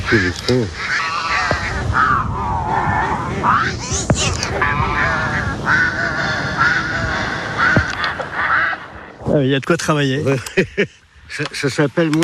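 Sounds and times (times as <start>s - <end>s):
chorus of ducks quacking: 0.0s - 9.2s
speech: 0.1s - 1.0s, 3.5s - 5.9s, 9.3s - 12.2s.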